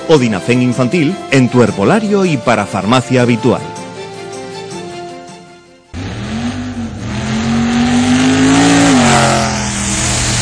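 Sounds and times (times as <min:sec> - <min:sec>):
speech: 0:00.1 - 0:03.8
car engine revving: 0:06.0 - 0:10.4.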